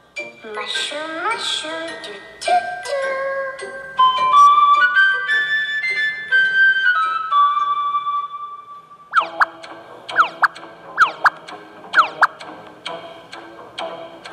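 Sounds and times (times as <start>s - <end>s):
speech: 0.5s - 3.9s
flute playing a short lilting tune: 3.9s - 11.3s
quick bouncy chirping blips: 9.2s - 12.4s.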